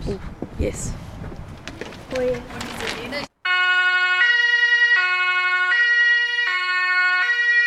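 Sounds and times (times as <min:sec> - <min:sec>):
speech: 0:00.1 - 0:01.1, 0:02.2 - 0:03.3
emergency vehicle two-tone siren wailing: 0:03.4 - 0:07.6.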